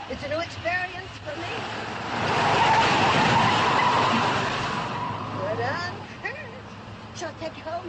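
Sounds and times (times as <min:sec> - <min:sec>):
people talking: 0:00.0 - 0:01.7, 0:05.4 - 0:07.8
hearse engine noise: 0:00.0 - 0:07.8
hearse tires skidding: 0:01.4 - 0:06.1.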